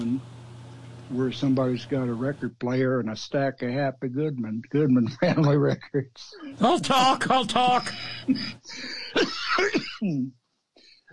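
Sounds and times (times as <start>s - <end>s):
speech: 1.1s - 10.4s
laughter: 4.1s - 10.2s
person clearing throat: 5.0s - 6.2s, 7.8s - 10.3s
person coughing: 7.8s - 10.3s.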